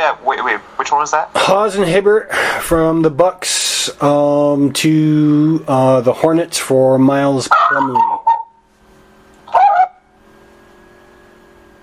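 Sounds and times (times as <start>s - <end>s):
speech: 0.0s - 8.2s
quiet hum: 0.0s - 11.8s
dog barking: 7.6s - 8.6s, 9.5s - 10.0s.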